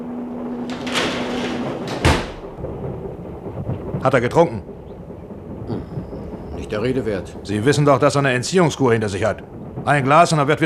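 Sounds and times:
door scraping while being closed: 0.5s - 2.6s
speech: 4.0s - 4.7s, 6.7s - 10.6s.

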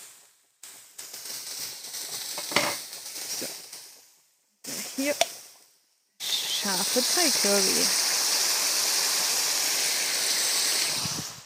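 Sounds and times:
speech: 5.0s - 5.4s, 6.6s - 8.1s
tap water running into an old food container: 6.2s - 11.4s.

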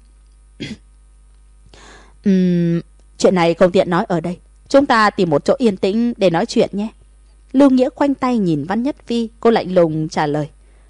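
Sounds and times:
steady low hum: 0.0s - 10.8s
gentle throat-clearing cough: 0.6s - 0.9s
speech: 3.2s - 10.6s.

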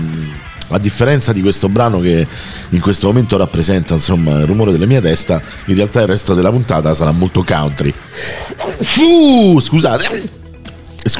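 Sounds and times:
speech: 0.7s - 10.4s
man sneezing from the damp night air: 8.3s - 9.2s, 9.8s - 10.4s.

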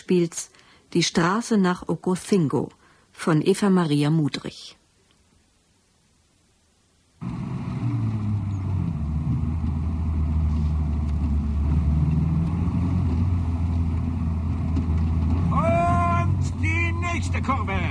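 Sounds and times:
speech: 0.1s - 4.8s, 17.2s - 17.8s
car engine droning while driving a bumpy potholed road in Mexico: 7.2s - 17.8s.

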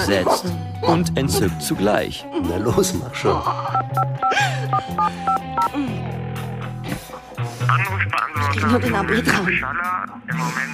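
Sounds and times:
speech: 0.0s - 6.2s, 7.7s - 10.7s
touch-tone beeps dialing a telephone number: 3.7s - 5.7s.

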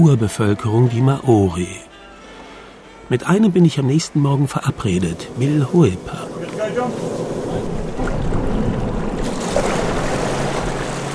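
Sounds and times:
speech: 0.0s - 1.9s, 3.1s - 7.8s
chartered fishing boat engine motoring across a calm gulf: 0.0s - 11.1s
water wash on a glassy calm gulf: 4.6s - 11.1s
wind noise: 6.0s - 11.1s.

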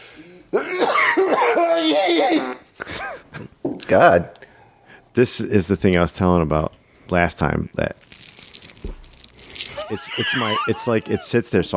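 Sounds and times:
speech: 0.5s - 0.9s, 3.9s - 4.4s, 5.2s - 8.1s, 9.9s - 11.7s
person coughing: 0.6s - 3.2s, 9.8s - 11.3s
laughter: 9.7s - 11.7s.

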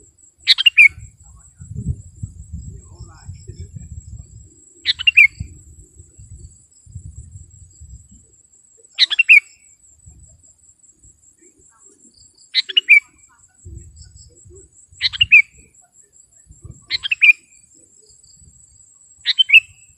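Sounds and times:
sooty-headed bulbul singing: 0.0s - 15.9s, 16.5s - 19.9s.

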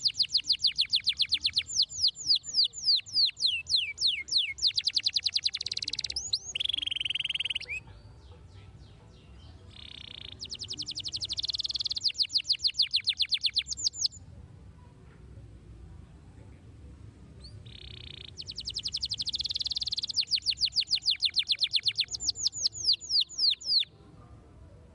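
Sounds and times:
Belgian canary singing: 0.0s - 14.2s, 17.4s - 23.9s.

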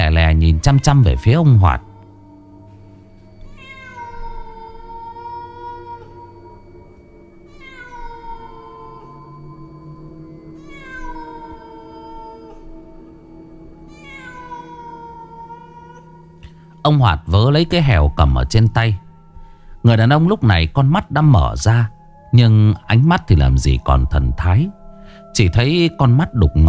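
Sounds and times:
low steady hum: 0.0s - 26.6s
black cat meowing: 0.1s - 2.2s, 3.4s - 6.4s, 7.5s - 9.4s, 10.6s - 12.7s, 13.9s - 16.4s
speech: 0.5s - 1.9s, 16.9s - 19.0s, 19.8s - 26.6s.

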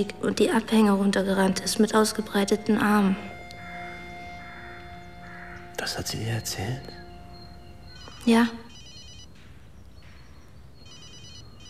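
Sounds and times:
speech: 0.0s - 3.3s, 5.8s - 7.0s, 8.2s - 8.6s
mobile phone ringing with a bright electronic trill: 1.6s - 9.4s, 10.8s - 11.6s.

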